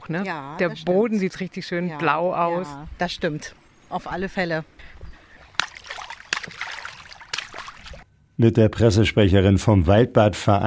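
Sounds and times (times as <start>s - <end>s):
speech: 0.1s - 5.0s, 8.4s - 10.6s
feet splashing in outdoor swimming pool water: 5.4s - 8.1s.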